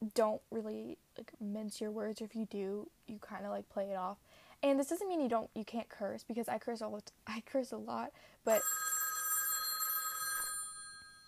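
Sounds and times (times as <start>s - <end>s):
speech: 0.2s - 8.8s
telephone bell ringing: 8.5s - 11.2s.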